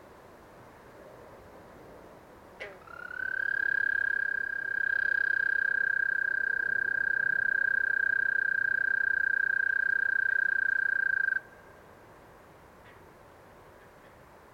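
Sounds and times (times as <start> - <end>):
faint background hiss: 0.0 - 14.5
Eastern American toad giving a long high musical trill on a marsh at night: 2.6 - 11.5.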